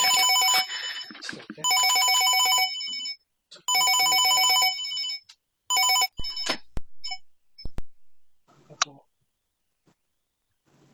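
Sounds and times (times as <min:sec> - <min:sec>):
phone ringtone for an incoming voice call: 0:00.0 - 0:07.2
sharp clicks as the phone call is picked up: 0:06.2 - 0:08.9.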